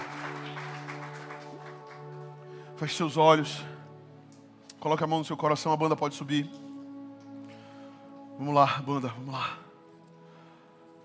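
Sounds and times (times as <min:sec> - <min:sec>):
church audience applauding during a service: 0:00.0 - 0:02.5
speech: 0:02.8 - 0:03.7, 0:04.8 - 0:06.6, 0:08.4 - 0:09.6.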